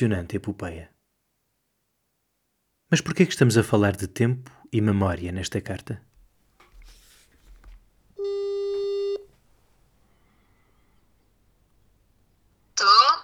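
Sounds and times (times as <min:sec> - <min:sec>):
speech: 0:00.0 - 0:01.0, 0:02.9 - 0:06.1
telephone ringback tone: 0:08.2 - 0:09.3.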